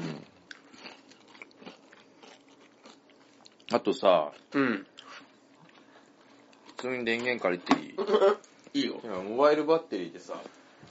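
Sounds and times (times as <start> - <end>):
person eating and chewing crunchy food: 0.0 - 6.8
speech: 3.7 - 4.9, 6.8 - 10.9.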